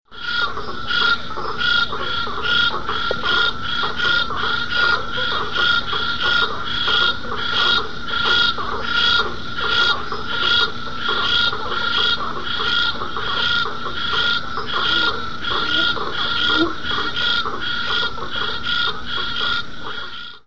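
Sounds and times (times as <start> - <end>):
Scinax crospedospilus frog calling: 0.1 - 20.4.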